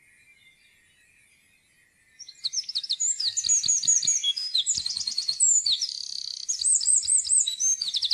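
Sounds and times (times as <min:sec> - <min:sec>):
Eurasian wren song: 0:00.0 - 0:08.1.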